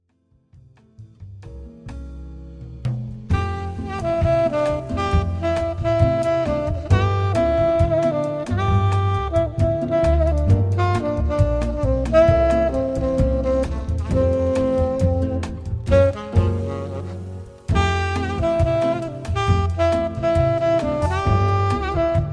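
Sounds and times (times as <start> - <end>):
solo saxophone: 3.3 - 22.3.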